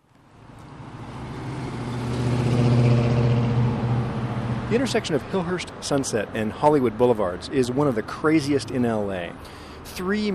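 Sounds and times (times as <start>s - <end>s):
car engine accelerating: 0.4s - 5.0s
speech: 4.7s - 10.3s.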